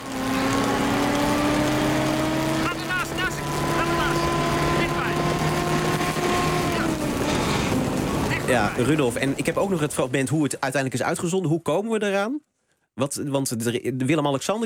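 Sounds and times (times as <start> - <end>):
car engine drone driving alongside galloping horses on a beach: 0.0 - 10.1
speech: 8.6 - 14.6.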